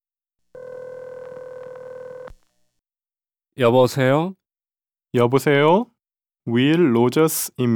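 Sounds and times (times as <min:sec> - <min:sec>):
steady loud phone tone: 0:00.6 - 0:02.4
speech: 0:03.6 - 0:04.4, 0:05.1 - 0:07.7.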